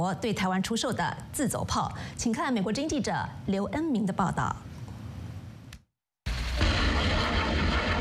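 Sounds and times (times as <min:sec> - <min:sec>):
speech: 0:00.0 - 0:04.7
live rockets fired from a multiple rocket launcher during a coastal exercise: 0:06.3 - 0:07.9.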